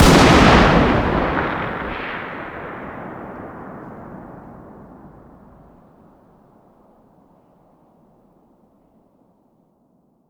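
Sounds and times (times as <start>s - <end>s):
distant .338 Lapua Magnum rifle firing outdoors: 0.0s - 5.8s.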